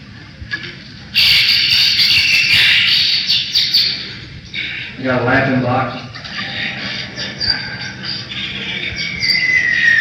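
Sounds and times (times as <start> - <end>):
dense chorus of many birds chirping and twittering: 1.2 - 5.0, 6.0 - 9.9
speech: 5.0 - 6.0.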